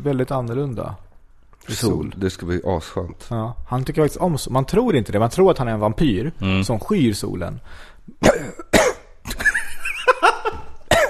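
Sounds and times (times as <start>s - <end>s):
speech: 0.0s - 8.6s
breathing: 7.6s - 8.1s
person coughing into the microphone: 8.2s - 9.2s, 10.8s - 11.0s.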